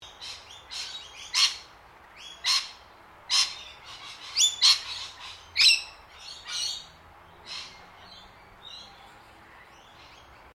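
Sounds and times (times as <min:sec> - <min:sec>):
faint steady background hiss: 0:00.0 - 0:10.5
lorikeets giving shrill harsh screeching calls: 0:00.1 - 0:08.9.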